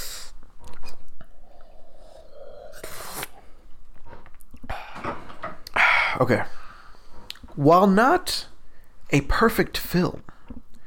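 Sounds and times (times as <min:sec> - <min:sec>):
person sipping and swallowing water: 0:00.3 - 0:05.0
speech: 0:06.2 - 0:06.6, 0:07.6 - 0:08.5, 0:09.1 - 0:10.4.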